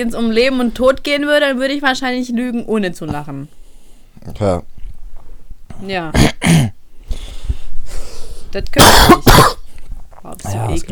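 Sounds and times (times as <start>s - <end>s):
speech: 0.0s - 3.6s, 4.2s - 4.7s, 5.8s - 6.8s, 8.5s - 9.6s, 10.2s - 10.8s
person coughing: 6.1s - 6.8s, 8.8s - 9.7s.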